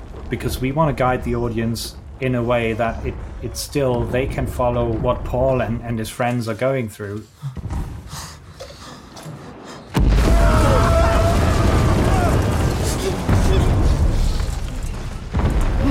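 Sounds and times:
bomb striking a bunker in a war film: 0:00.0 - 0:06.0, 0:09.9 - 0:15.8
bunker collapsing in a war film: 0:00.0 - 0:15.8
speech: 0:00.3 - 0:08.2.

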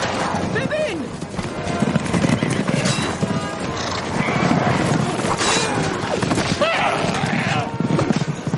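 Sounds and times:
many horses galloping in a cavalry charge: 0:00.0 - 0:08.5
horses whinnying: 0:02.9 - 0:08.4
people shouting in battle: 0:05.4 - 0:07.8.

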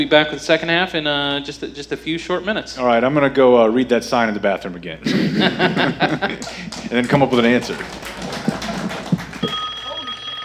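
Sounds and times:
speech: 0:00.0 - 0:08.1
laughter: 0:05.0 - 0:09.5
telephone at a radio station ringing: 0:09.3 - 0:10.4.

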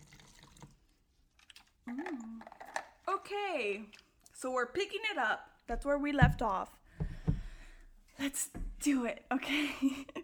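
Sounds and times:
tequila being poured into a shot glass: 0:00.0 - 0:01.5
speech: 0:03.2 - 0:06.8, 0:08.2 - 0:10.2.

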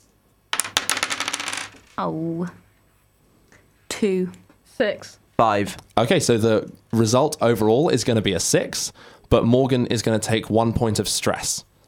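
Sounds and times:
dice rattling on a hard tabletop: 0:00.5 - 0:02.0
speech: 0:02.0 - 0:02.6, 0:04.0 - 0:11.7.

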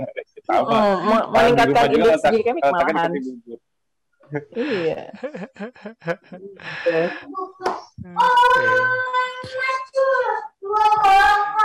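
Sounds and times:
laughter: 0:00.0 - 0:03.6, 0:04.4 - 0:07.4
softer murmured voice: 0:00.0 - 0:03.6, 0:04.3 - 0:09.4
speech: 0:00.0 - 0:03.6, 0:04.3 - 0:11.6
young child's high-pitched voice calling out and squealing: 0:07.2 - 0:11.6.

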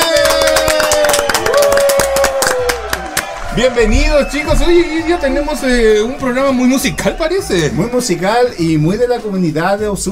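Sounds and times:
loud dense applause from a group: 0:00.0 - 0:03.9
speech: 0:03.6 - 0:10.1.

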